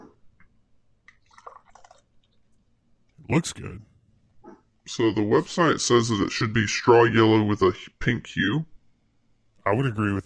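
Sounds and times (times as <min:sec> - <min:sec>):
faint fizzing of beer: 0:01.0 - 0:02.6
beer being poured into a glass: 0:01.1 - 0:02.4
speech: 0:03.3 - 0:03.9, 0:04.9 - 0:08.7, 0:09.6 - 0:10.2.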